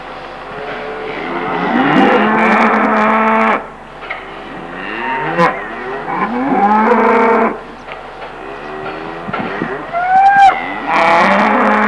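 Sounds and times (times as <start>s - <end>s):
cow bellowing: 0.7s - 3.7s, 4.7s - 7.6s, 8.4s - 11.8s.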